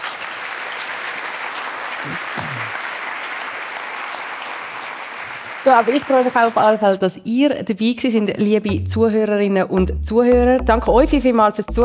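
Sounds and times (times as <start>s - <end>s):
crowd clapping: 0.0s - 6.8s
speech: 2.0s - 2.8s, 5.6s - 11.8s.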